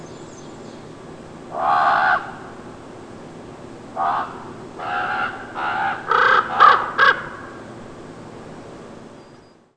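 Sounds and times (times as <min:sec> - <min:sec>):
Common raven harsh croaking caws: 0:01.5 - 0:02.5, 0:04.0 - 0:07.6.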